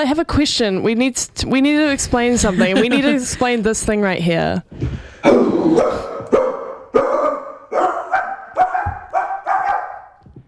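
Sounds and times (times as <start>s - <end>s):
speech: 0.0s - 6.1s
laughter: 2.3s - 3.8s
man imitating a dog barking: 5.2s - 10.0s.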